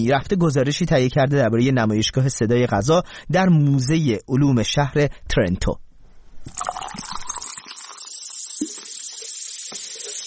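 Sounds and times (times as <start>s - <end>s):
speech: 0.0s - 5.8s, 6.4s - 7.2s
liquid sounds: 6.4s - 10.2s
soda drink fizzing: 6.5s - 10.2s.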